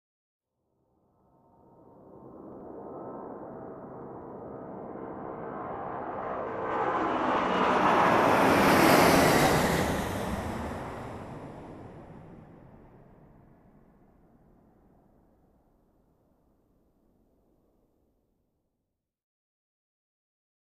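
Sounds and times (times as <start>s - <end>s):
commercial plane lifting off: 1.2s - 15.3s.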